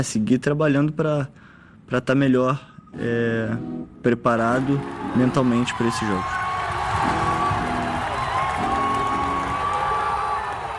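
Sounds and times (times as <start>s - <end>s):
speech: 0.0s - 6.4s
tennis crowd cheering in the stands: 4.3s - 10.7s.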